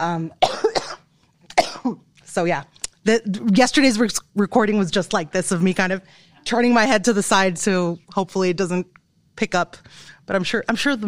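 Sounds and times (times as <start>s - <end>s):
speech: 0.0s - 0.5s, 1.8s - 11.0s
adult coughing: 0.4s - 2.0s.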